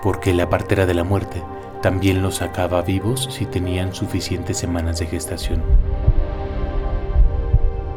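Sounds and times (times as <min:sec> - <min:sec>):
speech: 0:00.0 - 0:06.4
low heartbeat: 0:05.4 - 0:07.9
sustained droning hum: 0:05.5 - 0:07.9.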